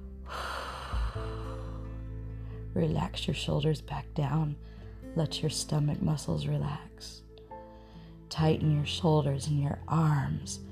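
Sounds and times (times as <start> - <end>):
person exhaling after a held breath during a sit-up relaxation exercise: 0.3 - 2.0
speech: 2.8 - 7.2, 8.3 - 10.7.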